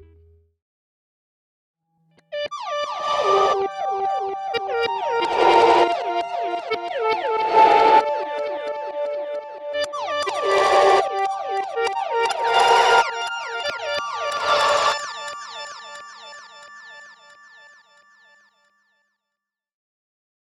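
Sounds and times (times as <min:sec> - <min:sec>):
gated reverse reverb effect: 0:02.5 - 0:18.1.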